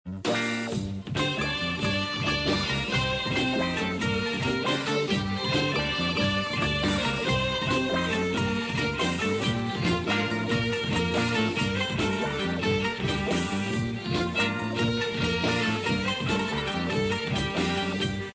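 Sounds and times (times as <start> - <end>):
Turkish film music: 0.1 - 18.3.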